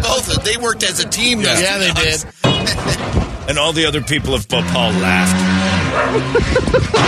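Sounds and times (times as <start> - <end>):
speech: 0.4 - 7.0
laughter: 1.1 - 3.0, 6.0 - 7.0
street dogs in Bhopal India barking and yipping in a played video: 5.7 - 6.9.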